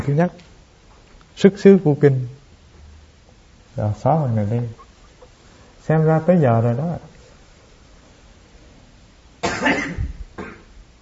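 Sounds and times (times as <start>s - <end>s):
speech: 0.0s - 0.5s, 1.4s - 2.4s, 3.8s - 4.8s, 5.8s - 7.1s
loud cough into the microphone: 9.4s - 10.8s.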